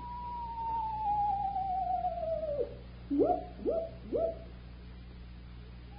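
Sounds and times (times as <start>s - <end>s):
screech owl whistling and hooting: 0.0s - 4.5s
low steady hum: 0.0s - 5.9s.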